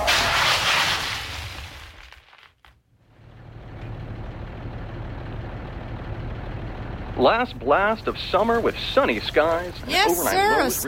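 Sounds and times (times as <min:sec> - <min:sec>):
car skidding on an icy road during a hailstorm: 0:00.0 - 0:02.4
low car engine rumble: 0:02.9 - 0:10.8
speech: 0:07.2 - 0:10.8.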